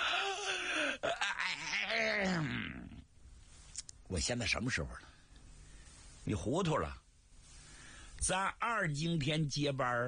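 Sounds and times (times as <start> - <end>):
man's voice imitating the yawn of a young man carrying a lantern: 0.0 - 3.0
speech: 4.1 - 5.2, 6.3 - 7.0, 8.2 - 10.0.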